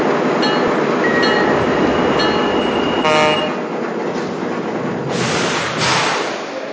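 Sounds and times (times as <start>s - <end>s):
railroad train pulling into a station, rumbling and clattering: 0.0s - 6.7s
railroad train horn blast: 3.0s - 3.7s.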